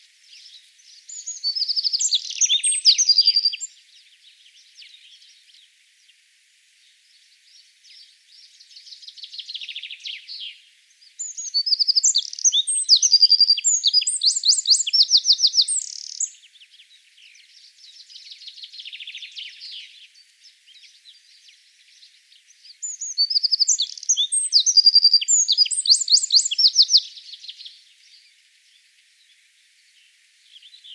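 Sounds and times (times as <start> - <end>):
wren singing: 0.4 - 3.7, 11.1 - 28.2.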